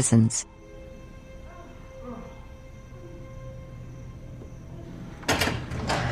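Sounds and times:
speech: 0.0s - 0.6s
low room hum: 0.0s - 6.1s
door opening: 4.3s - 6.1s.

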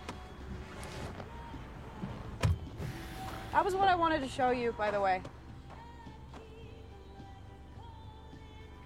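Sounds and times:
car door opening as a passenger gets out: 0.0s - 3.7s
car door thunk: 2.0s - 3.1s
speech: 3.6s - 5.4s.

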